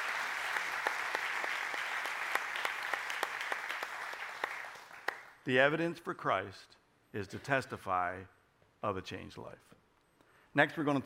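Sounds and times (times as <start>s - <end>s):
audience clapping: 0.0s - 5.4s
speech: 5.5s - 9.8s, 10.6s - 11.0s.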